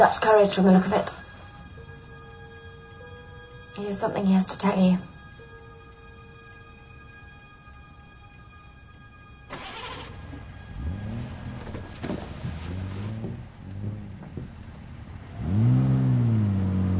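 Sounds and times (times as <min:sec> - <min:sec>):
speech: 0:00.0 - 0:01.2, 0:03.8 - 0:05.1
steady noise: 0:00.0 - 0:16.9
car engine revving as the car drives off: 0:09.5 - 0:16.9.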